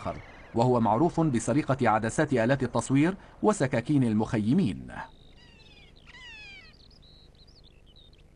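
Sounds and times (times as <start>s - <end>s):
speech: 0.0s - 5.2s
low rumble: 0.0s - 8.3s
kea parrot harsh cry in alpine meadows: 5.4s - 6.8s.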